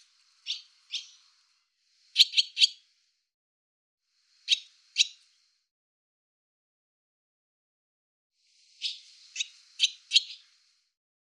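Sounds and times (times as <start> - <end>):
barn swallow sharp clipped chirps: 2.1 - 2.8, 8.6 - 10.5.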